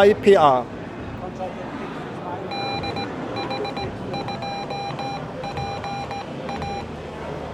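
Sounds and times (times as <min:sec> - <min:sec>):
speech: 0:00.0 - 0:00.8
busy noisy murmur: 0:00.0 - 0:07.5
hand-keyed Morse code beeps sending an amateur radio callsign: 0:02.5 - 0:06.9.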